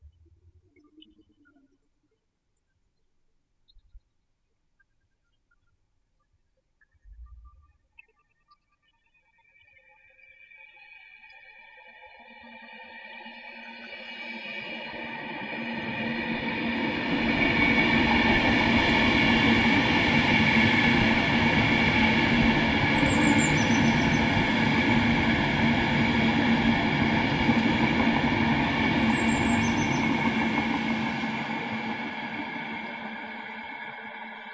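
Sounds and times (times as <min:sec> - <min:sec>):
train: 0:14.2 - 0:34.5.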